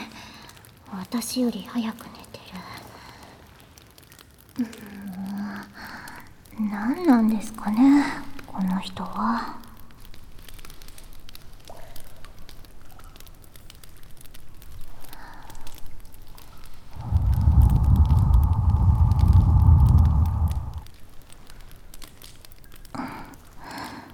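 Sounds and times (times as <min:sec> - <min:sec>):
underground bonfire crackling with sharp pops: 0:00.0 - 0:24.1
speech: 0:00.9 - 0:02.4, 0:06.6 - 0:09.6
louder low roaring rush of bonfire: 0:14.7 - 0:21.0.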